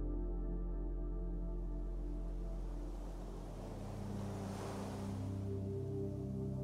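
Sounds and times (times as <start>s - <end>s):
steady low droning hum: 0.0s - 6.6s
soft ocean waves washing in: 1.9s - 6.6s.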